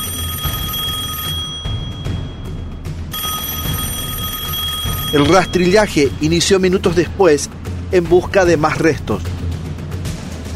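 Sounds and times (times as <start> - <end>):
police telephone bell ringing: 0.0 - 6.3
speech: 5.1 - 9.3.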